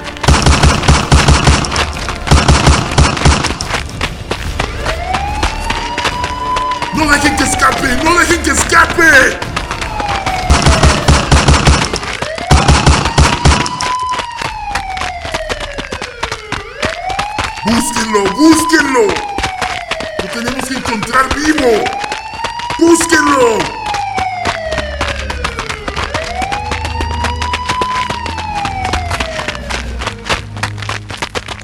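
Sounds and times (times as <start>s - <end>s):
several guns firing in long rapid bursts: 0.2s - 3.8s, 10.4s - 13.9s
siren wailing and sweeping: 4.4s - 30.4s
man shouting: 6.9s - 9.4s, 17.6s - 19.3s, 20.2s - 22.0s, 22.8s - 23.8s
speech: 7.0s - 9.5s, 17.7s - 19.3s, 20.4s - 22.0s, 22.8s - 23.8s.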